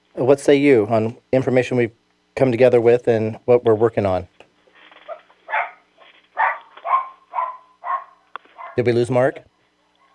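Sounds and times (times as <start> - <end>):
speech: 0.2 - 4.3, 8.8 - 9.5
dog barking: 5.1 - 8.9.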